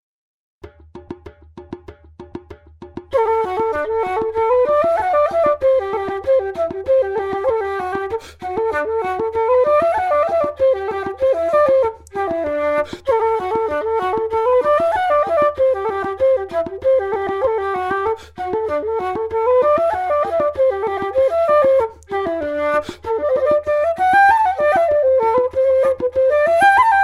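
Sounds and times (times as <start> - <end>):
percussion: 0.6 - 27.0
flute: 3.1 - 27.0.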